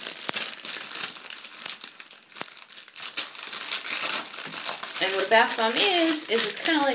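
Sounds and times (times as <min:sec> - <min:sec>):
wrapping paper crinkling as it is removed: 0:00.0 - 0:06.9
speech: 0:05.1 - 0:06.9.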